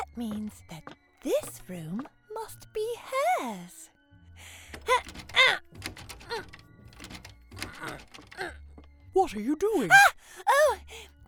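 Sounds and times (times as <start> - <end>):
speech: 0.2 - 3.8, 9.2 - 10.4
door rattled and pushed: 4.7 - 8.9
door handle and hinges creaking and squeaking: 4.7 - 9.0.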